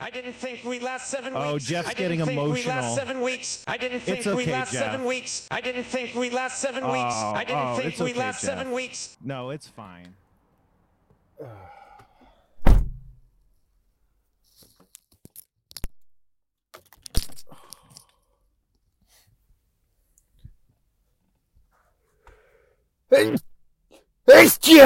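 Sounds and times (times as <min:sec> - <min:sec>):
speech: 0:00.1 - 0:10.2, 0:11.4 - 0:11.8, 0:23.1 - 0:23.5, 0:24.3 - 0:24.8
laughter: 0:04.0 - 0:05.1, 0:06.7 - 0:08.8
person sneezing: 0:23.1 - 0:23.5, 0:24.3 - 0:24.8.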